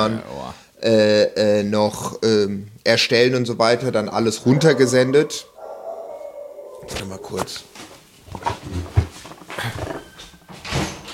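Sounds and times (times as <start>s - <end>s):
speech: 0.0s - 5.5s, 6.9s - 9.0s
dog making noises: 4.3s - 8.9s
soft bumps: 6.8s - 11.1s.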